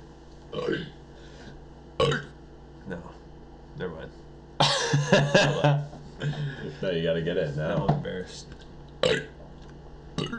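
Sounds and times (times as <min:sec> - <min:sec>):
person forcing out a burp imitating a video game burp: 0:00.5 - 0:01.0, 0:02.0 - 0:02.4, 0:09.0 - 0:09.4, 0:10.2 - 0:10.3
speech: 0:00.5 - 0:01.0, 0:05.1 - 0:05.8, 0:06.8 - 0:09.3
laughter: 0:04.6 - 0:06.8.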